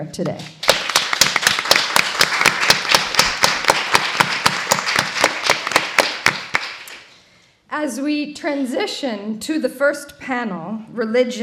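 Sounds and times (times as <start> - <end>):
speech: 0.0 - 0.6, 7.8 - 11.4
audience applause: 0.6 - 7.0.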